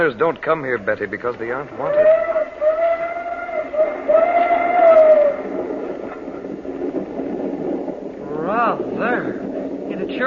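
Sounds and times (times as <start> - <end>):
speech: 0.0 - 2.4, 10.1 - 10.2
steam train rumbling along the tracks: 0.0 - 10.2
steam train whistle: 1.9 - 5.4.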